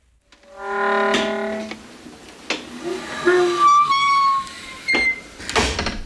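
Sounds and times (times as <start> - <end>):
singing door closer whining: 0.4 - 5.3
door creaking and squealing as it swings: 0.4 - 6.0
door closing thud: 4.9 - 6.0.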